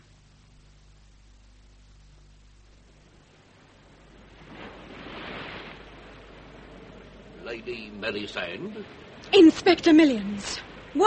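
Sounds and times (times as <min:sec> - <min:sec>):
sea waves washing onto the shore: 0:03.2 - 0:11.0
speech: 0:07.6 - 0:11.0.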